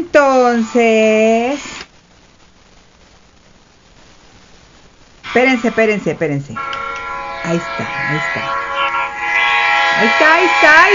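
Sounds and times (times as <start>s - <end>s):
speech: 0.0s - 1.7s, 5.3s - 6.8s, 7.4s - 8.6s, 10.0s - 10.9s
train horn blast: 6.6s - 10.9s.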